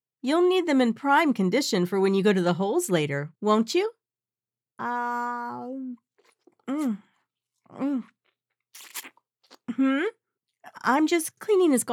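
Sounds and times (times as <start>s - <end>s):
speech: 0.2s - 4.0s, 4.8s - 6.0s, 6.7s - 7.1s, 7.7s - 8.1s, 9.7s - 11.9s
crunchy munching while eating lunch: 6.1s - 9.7s
wet slurps while eating lunch: 8.1s - 9.7s.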